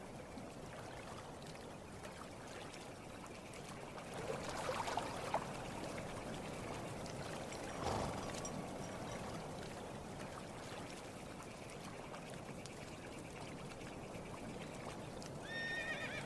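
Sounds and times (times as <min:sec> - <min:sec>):
lake water lapping and trickling: 0:00.0 - 0:16.2.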